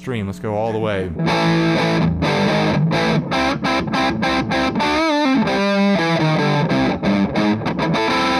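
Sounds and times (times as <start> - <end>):
speech: 0.0 - 3.3
electric guitar through a fuzz pedal at maximum setting: 1.2 - 8.3.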